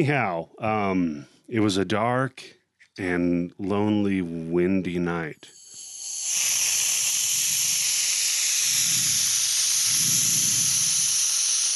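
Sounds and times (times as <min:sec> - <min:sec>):
speech: 0:00.0 - 0:05.6
industrial-strength canned air duster spraying onto a microphone pop screen: 0:05.5 - 0:11.7.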